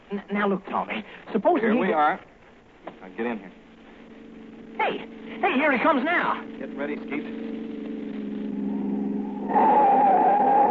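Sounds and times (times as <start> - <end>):
speech: 0.1 - 3.6, 4.8 - 7.5
car engine rumbling: 1.6 - 10.6
loud sustained tire screech of car skidding to a stop: 4.8 - 10.6.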